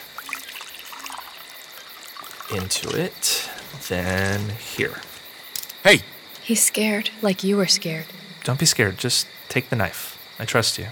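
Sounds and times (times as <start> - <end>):
water pouring into a glass: 0.0 - 5.0
speech: 2.5 - 5.1, 5.8 - 10.9.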